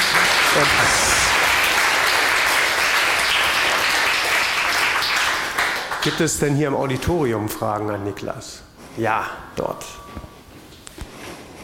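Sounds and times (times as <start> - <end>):
audience applause: 0.0 - 6.3
speech: 0.6 - 1.1, 6.0 - 10.2.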